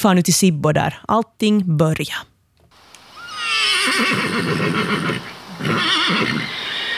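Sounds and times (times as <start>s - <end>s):
speech: 0.0s - 2.3s, 3.9s - 6.7s
faint noise: 0.0s - 6.9s
horse whinnying at a stable in Sibbo: 3.2s - 6.9s.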